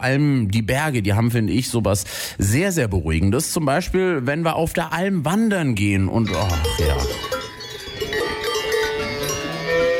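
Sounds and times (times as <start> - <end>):
speech: 0.0 - 7.3
cow bells clanking: 6.2 - 9.9.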